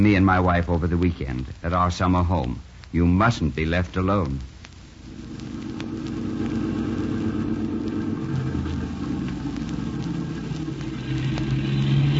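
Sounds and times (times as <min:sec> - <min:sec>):
speech: 0:00.0 - 0:04.5
car traffic roaring on a highway: 0:05.7 - 0:12.1
car passing by on a highway: 0:06.4 - 0:12.1.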